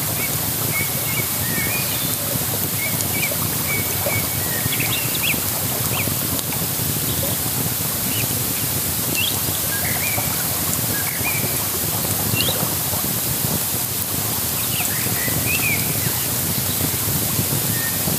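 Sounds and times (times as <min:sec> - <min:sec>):
birds chirping: 0:00.0 - 0:13.4, 0:14.3 - 0:18.1
campfire crackling on the Isar: 0:00.0 - 0:18.1
constant dense hiss: 0:00.0 - 0:18.1
rushing water of the Isar: 0:00.0 - 0:18.1.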